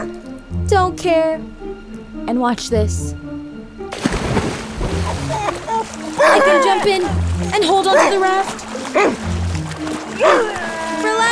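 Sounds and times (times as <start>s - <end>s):
speech: 0.0s - 1.5s, 2.3s - 3.2s, 6.2s - 9.3s, 10.2s - 11.3s
dog growling: 5.0s - 11.3s
dog barking: 5.1s - 7.2s, 7.9s - 9.3s, 10.1s - 10.7s.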